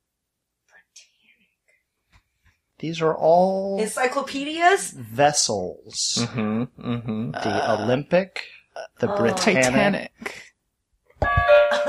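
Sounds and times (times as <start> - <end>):
speech: 2.8 - 10.4
two-tone doorbell-style ding-dong chime used as a quiz bell: 11.2 - 11.8.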